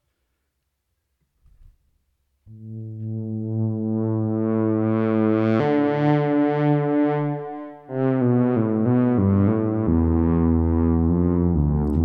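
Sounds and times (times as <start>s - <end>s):
buzzy sustained synthesizer pad with delay and modulation: 2.5s - 12.0s.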